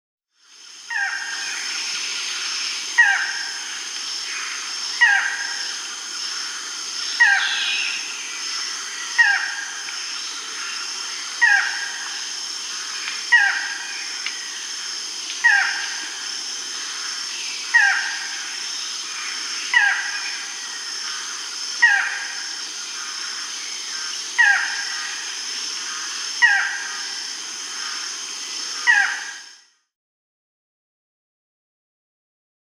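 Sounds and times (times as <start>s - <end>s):
Barred Forest-Falcon Micrastur rufi call in S. America: 0.9s - 2.4s, 3.0s - 5.7s, 6.4s - 9.8s, 10.4s - 12.1s, 12.7s - 14.6s, 15.4s - 28.1s, 28.7s - 29.6s.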